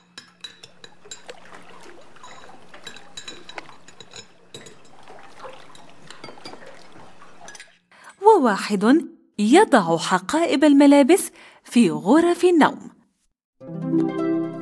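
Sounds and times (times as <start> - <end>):
plates and utensils clinking and knocking while a child washes dishes: 0.0 - 7.8
steady stream of running water: 0.2 - 12.6
speech: 8.4 - 12.9.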